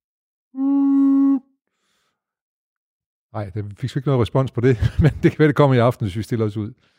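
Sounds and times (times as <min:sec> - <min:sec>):
person howling: 0:00.6 - 0:01.5
speech: 0:03.3 - 0:06.9
laughter: 0:04.7 - 0:05.4.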